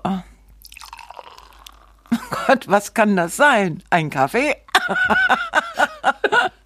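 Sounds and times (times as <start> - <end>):
Prosecco pouring from a screw-cap bottle into a glass: 0.6 - 2.2
speech: 2.5 - 5.6
laughter: 4.8 - 6.6.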